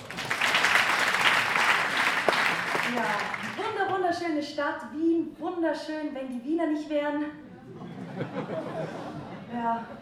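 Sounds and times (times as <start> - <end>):
live audience clapping on request: 0.0 - 3.6
speech: 4.1 - 10.0
laughter: 7.6 - 10.0.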